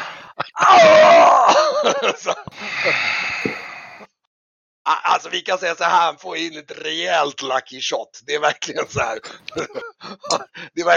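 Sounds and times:
voice imitating a distant scream: 0.4s - 1.7s
laughter: 1.5s - 3.0s, 8.8s - 10.7s
speech: 1.9s - 3.2s, 4.9s - 10.9s.

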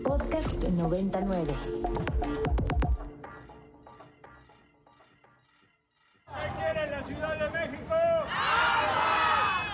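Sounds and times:
speech: 0.1s - 3.1s
crowd of protesters demonstrating over a severe water shortage in Mexico City: 6.3s - 9.7s
many people yelling and chanting over one another: 6.3s - 9.7s.

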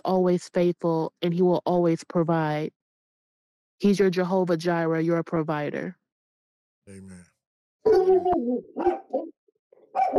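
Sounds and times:
speech: 0.0s - 2.8s, 3.8s - 6.0s, 6.9s - 9.0s, 10.0s - 10.1s
vocal-like tones: 6.9s - 7.3s
dog barking: 8.8s - 9.2s, 9.9s - 10.1s.

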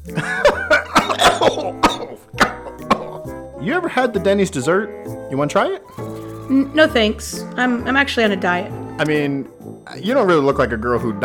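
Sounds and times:
man chuckling: 0.1s - 3.3s
man's rough phlegmy smoker's coughs: 0.2s - 3.3s
man's raspy wheezing: 0.3s - 3.3s
speech: 3.7s - 11.2s.

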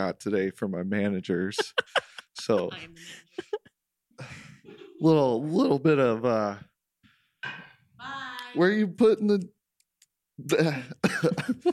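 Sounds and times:
speech: 0.0s - 6.7s, 7.4s - 9.6s, 10.4s - 11.7s
laughter: 1.0s - 3.7s
person coughing: 10.7s - 11.6s.

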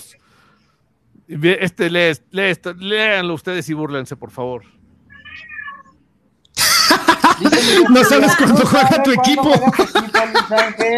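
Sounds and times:
speech: 1.3s - 4.8s, 6.9s - 10.9s
pet cat meowing: 5.1s - 6.0s
laughter: 6.6s - 10.9s.

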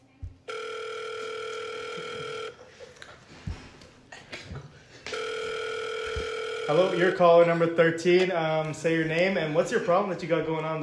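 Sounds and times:
electronic telephone ring tone: 0.5s - 2.6s, 5.1s - 7.8s
speech: 6.7s - 10.8s.

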